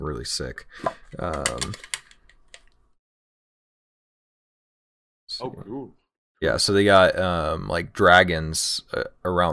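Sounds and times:
speech: 0.1s - 2.0s, 5.4s - 9.5s
metal dice clicking while handled: 1.2s - 2.7s.

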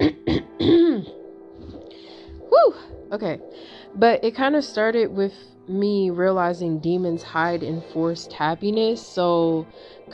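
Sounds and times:
person clearing throat: 0.0s - 1.1s
speech: 3.1s - 10.1s.

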